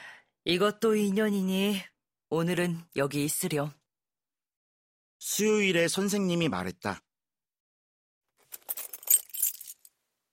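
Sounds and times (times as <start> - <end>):
speech: 0.5 - 3.8, 5.2 - 7.0
bunch of spare keys jangling: 8.4 - 9.9.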